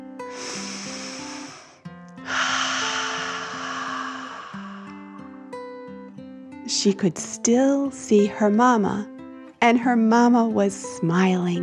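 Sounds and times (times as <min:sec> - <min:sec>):
soft steady music: 0:00.0 - 0:11.6
deep breath in and out: 0:00.3 - 0:05.7
speech: 0:06.7 - 0:11.6.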